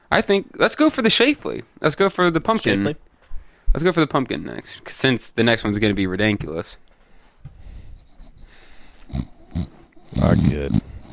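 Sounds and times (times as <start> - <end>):
speech: 0.1 - 3.1, 3.7 - 6.8, 9.1 - 10.9
dog snoring into a microphone: 7.9 - 11.1.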